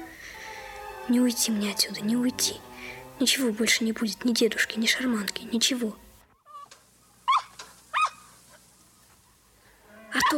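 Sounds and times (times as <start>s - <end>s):
speech: 1.1s - 6.0s
dog giving sharp high yelps: 6.4s - 8.3s.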